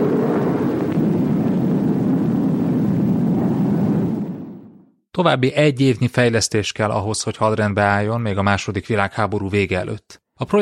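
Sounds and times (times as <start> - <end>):
jet aircraft taking off: 0.0 - 4.8
speech: 5.2 - 10.6.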